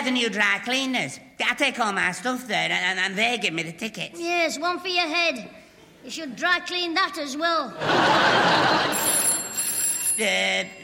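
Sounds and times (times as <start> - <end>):
speech: 0.0 - 9.2, 10.2 - 10.8
laughter: 7.8 - 9.5
telephone ringing in electronic bursts: 8.7 - 10.8.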